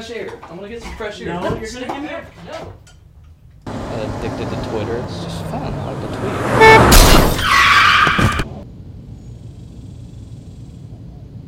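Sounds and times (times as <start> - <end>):
speech: 0.0 - 2.9, 4.0 - 7.6
car tires screeching in a high-pitched skid: 3.7 - 8.6.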